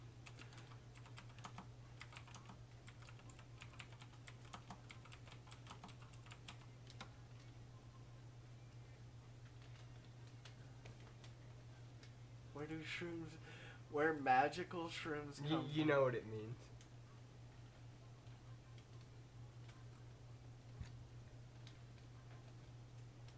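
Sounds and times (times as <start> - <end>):
steady low hum: 0.0 - 23.3
rapid typing on a computer keyboard: 0.2 - 7.1
speech: 12.6 - 16.7.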